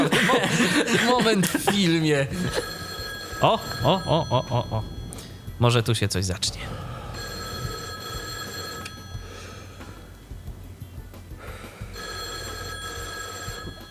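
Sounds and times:
laughter: 0:00.0 - 0:02.8, 0:03.9 - 0:04.9
speech: 0:00.9 - 0:02.8, 0:03.4 - 0:05.0, 0:05.6 - 0:06.8
telephone bell ringing in a film: 0:02.4 - 0:05.8, 0:07.2 - 0:10.2, 0:11.9 - 0:13.8
steady low rumbling background: 0:03.8 - 0:11.6.

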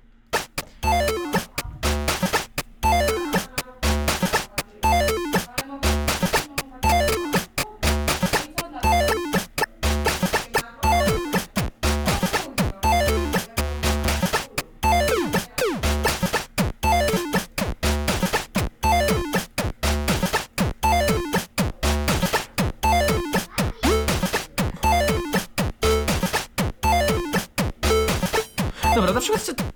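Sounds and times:
pocket synthesizer looping electronic knocking hits: 0:00.4 - 0:29.7
pocket synthesizer thumping low beats: 0:00.4 - 0:29.7.

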